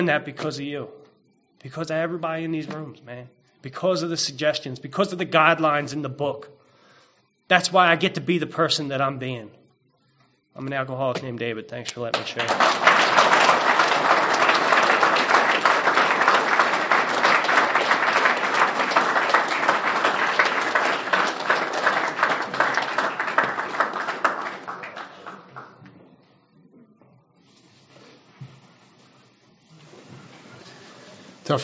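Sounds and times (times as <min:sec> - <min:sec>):
speech: 0:00.0 - 0:01.0, 0:01.6 - 0:06.6, 0:07.5 - 0:09.6, 0:10.6 - 0:13.2
roomful of people clapping: 0:12.1 - 0:25.9.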